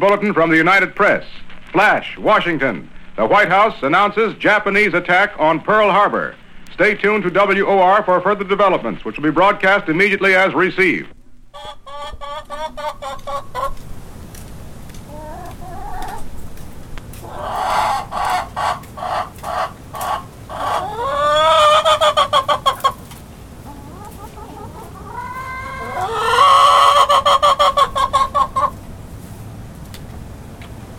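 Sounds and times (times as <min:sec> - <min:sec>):
speech: 0:00.0 - 0:13.6
chickens clucking: 0:11.1 - 0:29.0.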